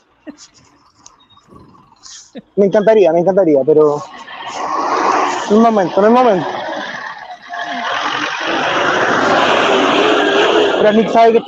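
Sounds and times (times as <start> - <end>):
speech: 0.2 - 4.2, 5.5 - 6.6, 10.8 - 11.4
car engine roaring past at speed: 3.3 - 11.4.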